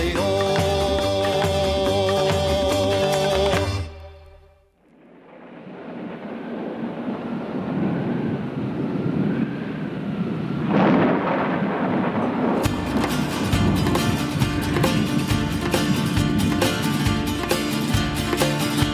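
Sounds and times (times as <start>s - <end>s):
wind during a storm: 0.0s - 18.9s
rain during a storm: 4.8s - 18.9s
thunder rumbling during a storm: 4.8s - 18.9s.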